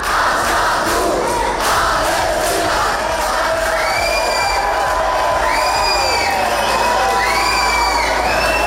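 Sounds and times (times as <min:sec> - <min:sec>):
protesters roaring and shouting during a riot at an airport: 0:00.0 - 0:08.6
protesters' high wavering calls and whoops: 0:03.6 - 0:08.6.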